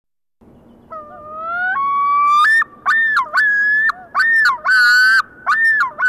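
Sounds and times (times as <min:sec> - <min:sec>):
loon wailing and yodelling: 0:00.9 - 0:06.0.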